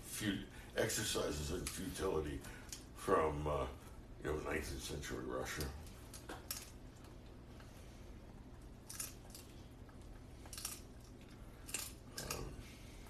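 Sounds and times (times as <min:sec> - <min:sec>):
quiet hum: 0:00.0 - 0:13.0
speech: 0:00.2 - 0:05.8
female dog chewing: 0:05.9 - 0:13.0.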